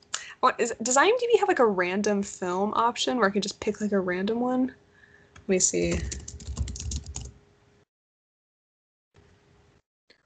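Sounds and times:
speech: 0.4 - 4.8, 5.5 - 6.3
computer keyboard typing: 5.8 - 7.4.

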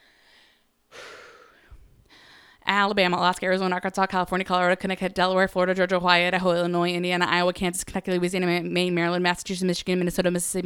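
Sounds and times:
person drawing a deep breath: 0.0 - 2.6
speech: 2.7 - 10.6.

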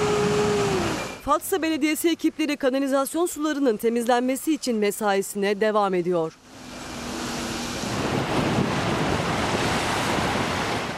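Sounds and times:
rough stormy sea waves crashing: 0.0 - 1.2, 6.4 - 10.9
speech: 1.3 - 6.4
strong wind buffeting the microphone: 6.6 - 10.9.

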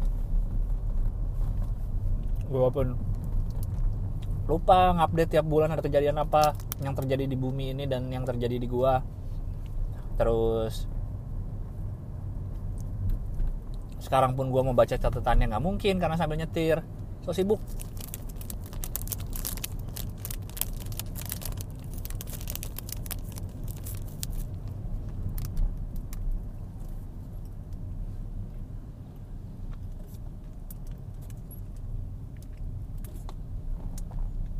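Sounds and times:
steady low rumble of a moving car's interior: 0.0 - 34.5
speech: 2.5 - 3.3, 4.5 - 9.2, 10.2 - 10.9, 14.0 - 18.0
crinkly plastic wrapper rustling as someone eats in a moving car: 17.6 - 24.7, 25.3 - 26.1.

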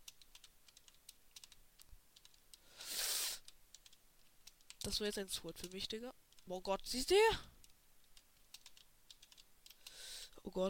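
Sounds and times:
typing on a computer keyboard: 0.0 - 2.6, 3.4 - 6.5, 7.6 - 10.0
speech: 4.8 - 7.5, 10.5 - 10.6.

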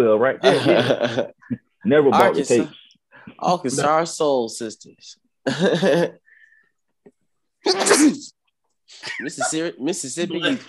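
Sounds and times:
speech: 0.0 - 6.2, 7.6 - 10.6
laughter: 0.4 - 1.4, 9.0 - 10.6
person sneezing loudly: 7.6 - 8.3.

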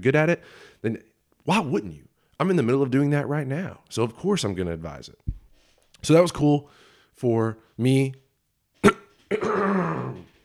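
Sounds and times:
speech: 0.0 - 5.4, 6.0 - 8.2, 8.8 - 10.3
person coughing: 8.8 - 10.3.

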